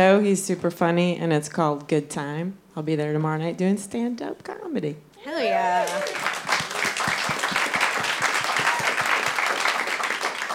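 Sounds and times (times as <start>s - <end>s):
speech: 0.0s - 6.3s
room full of people applauding: 5.3s - 10.5s.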